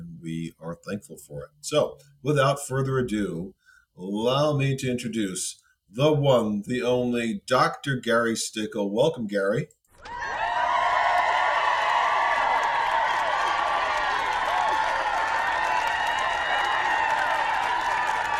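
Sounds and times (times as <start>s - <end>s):
speech: 0.2s - 10.4s
crowd applauding: 10.1s - 18.3s.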